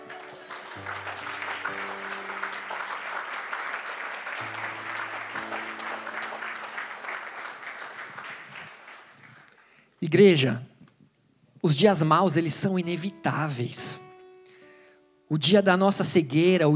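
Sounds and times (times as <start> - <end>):
crowd applauding: 0.0 - 9.7
speech: 0.8 - 1.3, 10.0 - 10.7, 11.6 - 14.0, 15.3 - 16.7.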